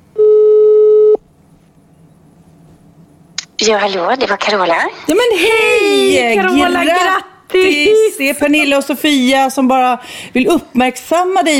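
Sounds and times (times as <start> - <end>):
electronic ringback tone from a phone line: 0.2 - 1.2
speech: 3.6 - 11.5.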